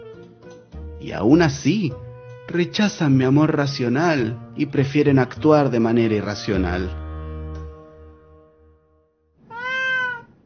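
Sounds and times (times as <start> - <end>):
speech: 1.0 - 7.0
black cat meowing: 9.4 - 10.4.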